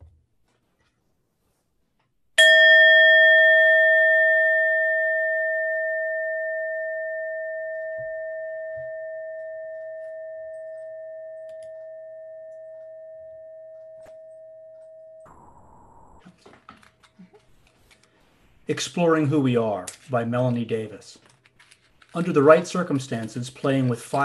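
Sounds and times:
struck worship bell ringing: 2.4 - 15.3
speech: 18.7 - 21.2, 22.1 - 24.2.

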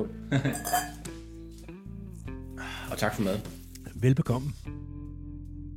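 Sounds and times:
speech: 0.0 - 1.0, 2.9 - 4.9
glasses clinking in a toast: 0.5 - 1.1.

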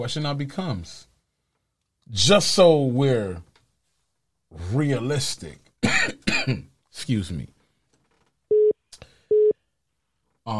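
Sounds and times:
speech: 0.0 - 1.1, 2.1 - 3.5, 4.5 - 7.6
telephone line beeps of an incoming caller: 8.5 - 9.6.

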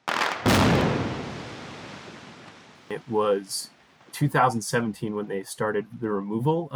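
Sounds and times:
explosion blowing up a dam: 0.0 - 3.2
speech: 2.9 - 6.7.

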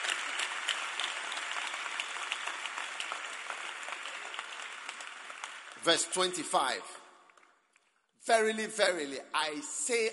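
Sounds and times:
large congregation applauding: 0.0 - 7.5
speech: 5.8 - 7.0, 8.2 - 10.1.

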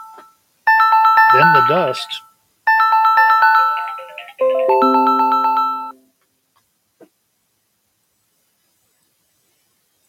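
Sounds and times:
phone ringing with a bright electronic melody: 0.7 - 6.0
speech: 1.4 - 2.3.

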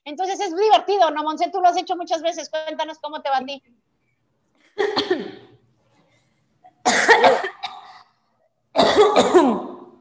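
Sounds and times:
speech: 0.1 - 3.9, 4.8 - 5.3
person coughing: 4.8 - 5.6, 6.8 - 8.2, 8.8 - 9.9.

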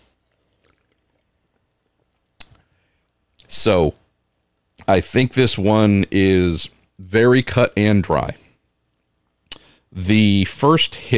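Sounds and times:
person sipping a Bean Flicker drink: 0.1 - 3.1
speech: 3.5 - 4.0, 4.9 - 8.4, 9.9 - 11.1.

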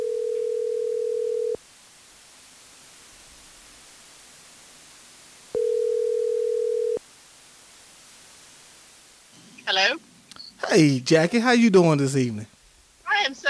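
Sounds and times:
telephone line tones while a call is placed: 0.0 - 1.6, 5.6 - 7.0
faint hiss: 1.6 - 5.9, 7.0 - 13.4
speech: 10.7 - 12.5.

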